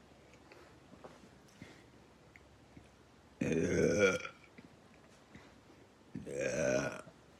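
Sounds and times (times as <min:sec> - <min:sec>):
woman belching: 0:03.4 - 0:04.4, 0:06.2 - 0:07.1.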